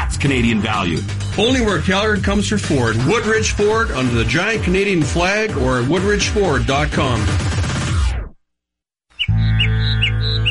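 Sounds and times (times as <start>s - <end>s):
speech: 0.2s - 7.5s
birds chirping: 9.1s - 10.5s.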